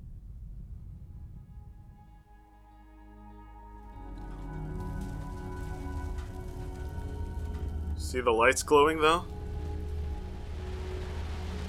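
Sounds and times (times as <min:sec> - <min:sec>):
faint tonal whine: 0:00.0 - 0:11.6
low droning hum: 0:00.0 - 0:11.6
steady rain falling: 0:04.0 - 0:11.6
speech: 0:08.1 - 0:09.4.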